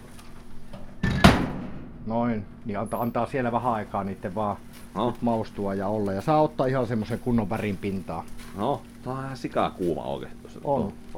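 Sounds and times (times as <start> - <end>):
low hum: 0.0 - 11.1
hatch of a hot oven clattering and thumping shut: 0.8 - 2.0
speech: 2.1 - 11.1.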